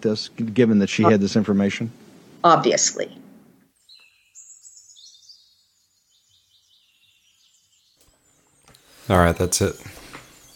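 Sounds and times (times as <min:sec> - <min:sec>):
speech: 0:00.0 - 0:03.2, 0:09.1 - 0:10.0
birds chirping: 0:02.2 - 0:10.5.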